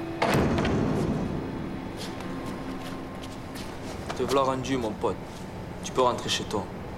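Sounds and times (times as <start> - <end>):
apartment door shutting with a thud and rattle: 0.2 - 1.4
speech: 4.2 - 6.8.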